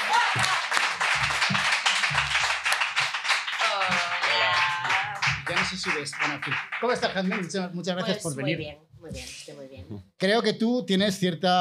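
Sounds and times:
crowd clapping: 0.0 - 7.7
speech: 5.7 - 11.6.

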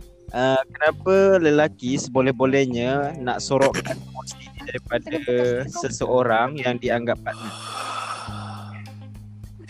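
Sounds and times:
speech: 0.3 - 7.9
person yawning: 7.3 - 9.0.

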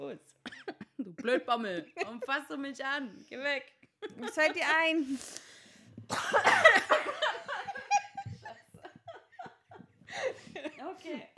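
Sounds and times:
speech: 1.2 - 5.4
laughter: 4.0 - 5.2, 6.2 - 11.3
two people coughing: 6.1 - 7.0.

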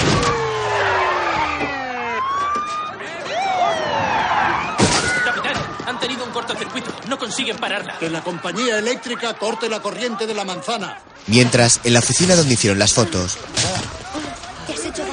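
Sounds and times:
sharp crash-like slam: 0.0 - 1.8, 4.8 - 5.7
police car sirens on a city street: 0.0 - 10.3
laughter: 1.4 - 15.1
speech: 7.1 - 13.9.

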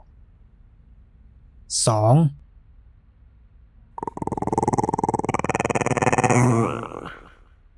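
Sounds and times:
speech: 1.7 - 2.4
children making throaty threatening growls in the throat: 4.0 - 7.4.

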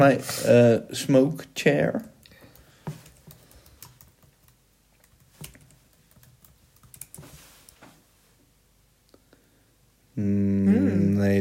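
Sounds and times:
speech: 0.0 - 2.1, 11.2 - 11.4
typing on a computer keyboard: 2.3 - 7.2.

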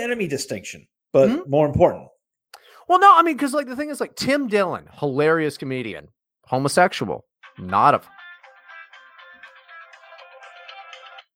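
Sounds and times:
speech: 0.0 - 2.2, 2.9 - 8.2
phone ringtone from an incoming scam call: 7.4 - 11.3.

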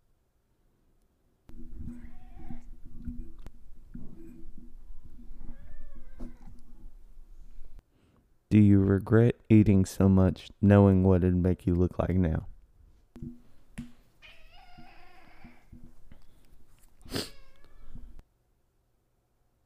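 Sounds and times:
cat meowing: 1.8 - 2.8, 5.4 - 6.6, 14.2 - 15.7, 17.2 - 18.2
speech: 8.6 - 12.5.

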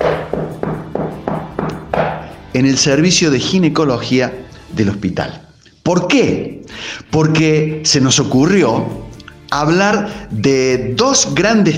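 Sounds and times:
knocking on a door: 0.0 - 2.4
speech: 2.6 - 11.7.

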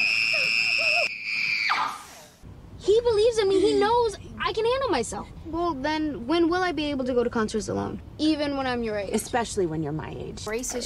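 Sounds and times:
woman screaming at a shrill pitch: 0.0 - 2.2
speech: 3.8 - 10.8.

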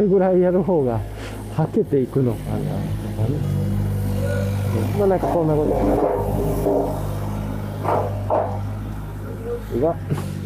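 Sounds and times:
speech: 0.0 - 7.1, 7.8 - 8.4, 9.7 - 10.3
low mechanical drone of construction work: 0.0 - 10.4
scraping rasping bursts of construction work: 2.2 - 9.2.

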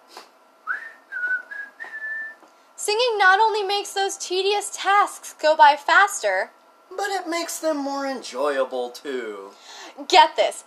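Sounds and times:
person whistling a short cheerful tune: 0.7 - 2.4
speech: 2.9 - 10.6.

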